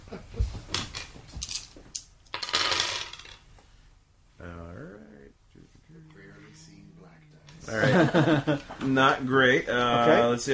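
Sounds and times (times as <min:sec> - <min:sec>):
purple blue and black dice clattering across a hard tabletop: 0:00.9 - 0:03.5
laughter: 0:07.6 - 0:08.9
speech: 0:07.7 - 0:10.5.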